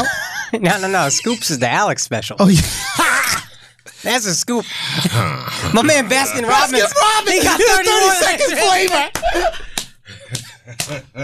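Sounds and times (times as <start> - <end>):
people laughing: 0.0 - 1.8, 2.4 - 3.7, 5.7 - 11.2
speech: 0.0 - 3.4, 4.0 - 9.7, 10.9 - 11.2
hands slapping in high fives: 8.8 - 11.2.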